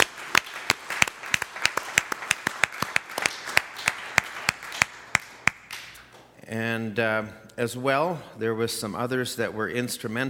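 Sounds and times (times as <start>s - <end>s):
small crowd applauding with hand claps: 0.0s - 6.0s
speech: 6.5s - 10.2s.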